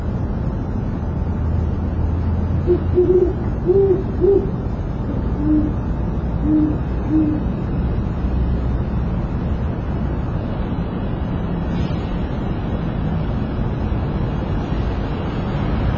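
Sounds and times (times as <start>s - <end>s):
steady low rumble: 0.0s - 15.9s
owl hooting: 2.6s - 5.8s, 6.4s - 7.5s.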